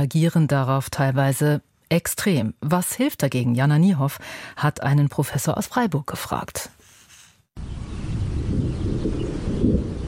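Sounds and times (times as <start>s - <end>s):
speech: 0.0s - 6.8s
loud deep rumble of rolling thunder: 7.6s - 10.0s.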